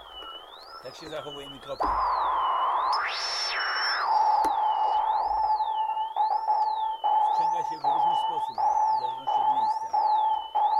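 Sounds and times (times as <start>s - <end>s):
steady mid-pitched electronic sine tone from a tone generator: 0.0s - 10.7s
speech: 0.8s - 2.3s, 3.1s - 3.4s.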